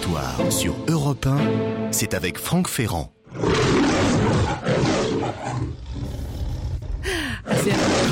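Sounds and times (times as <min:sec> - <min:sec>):
speech: 0:00.1 - 0:03.5
lion roar from a film studio logo: 0:03.3 - 0:08.0.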